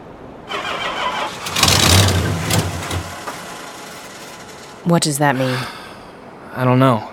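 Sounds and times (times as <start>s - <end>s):
engine cranking as ignition key is turned: 0.5s - 4.9s
speech: 4.8s - 5.8s, 6.6s - 7.1s.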